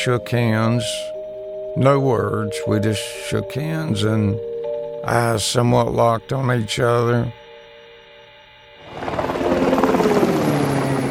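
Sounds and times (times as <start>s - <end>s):
speech: 0.0s - 1.1s, 1.8s - 7.4s
helicopter rotor roar: 8.8s - 11.0s.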